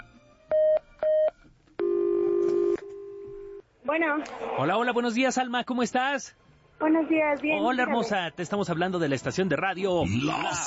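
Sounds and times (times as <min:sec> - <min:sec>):
telephone line tone: 0:00.0 - 0:03.6
speech: 0:04.0 - 0:10.6.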